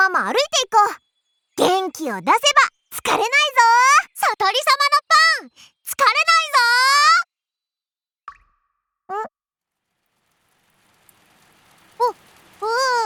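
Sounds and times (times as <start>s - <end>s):
speech: 0.2s - 1.0s, 1.9s - 7.3s, 9.1s - 9.4s, 12.0s - 13.0s
scattered raindrops plopping: 9.7s - 13.0s.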